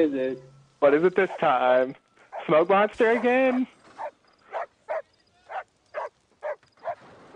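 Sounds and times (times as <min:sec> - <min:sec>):
speech: 0:00.0 - 0:03.8
dog barking: 0:03.2 - 0:07.3.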